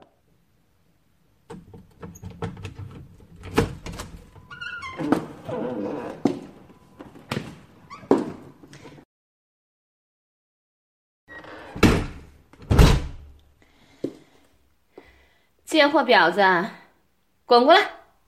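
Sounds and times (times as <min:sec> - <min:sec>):
door opening and slamming shut: 0:01.5 - 0:06.6, 0:11.3 - 0:13.3
speech: 0:15.7 - 0:16.8, 0:17.5 - 0:17.9.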